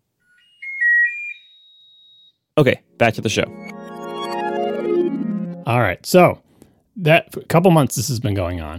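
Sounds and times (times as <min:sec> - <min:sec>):
speech: 0:02.6 - 0:03.6, 0:05.6 - 0:06.4, 0:07.0 - 0:08.7
short electronic jingle of quick beeps stepping upward in pitch: 0:03.0 - 0:05.7.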